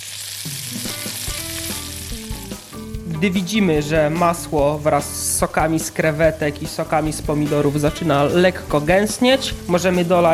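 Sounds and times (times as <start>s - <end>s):
onion and tomatoes sizzling in a frying pan: 0.0s - 3.1s, 7.3s - 10.3s
speech: 3.2s - 10.3s.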